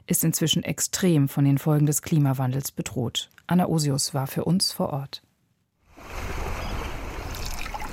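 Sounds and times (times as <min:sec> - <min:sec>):
speech: 0:00.1 - 0:05.2
oars dipping through a calm water channel in marshes: 0:06.0 - 0:07.9.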